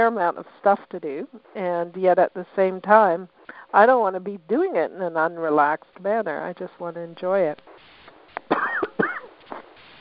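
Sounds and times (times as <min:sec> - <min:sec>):
speech: 0:00.0 - 0:07.8
man coughing: 0:08.5 - 0:09.3.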